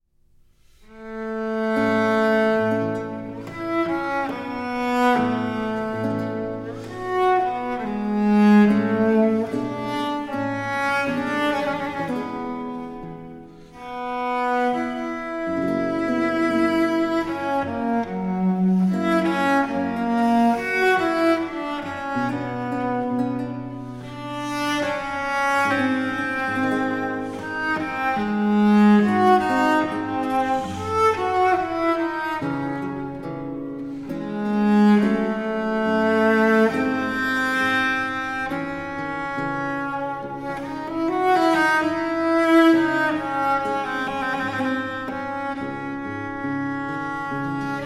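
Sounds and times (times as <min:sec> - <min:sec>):
cello concerto in F major largo: 0:00.4 - 0:47.8.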